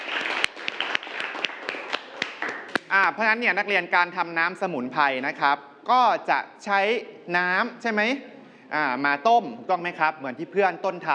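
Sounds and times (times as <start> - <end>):
classmates clapping in a classroom: 0.0 - 3.1
speech: 2.9 - 11.1.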